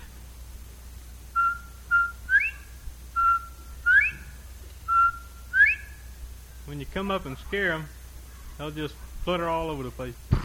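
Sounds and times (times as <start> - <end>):
steady low rumble: 0.0 - 10.4
person whistling an imitation of a bobwhite quail call: 1.4 - 6.0
speech: 6.8 - 8.0, 8.6 - 10.3.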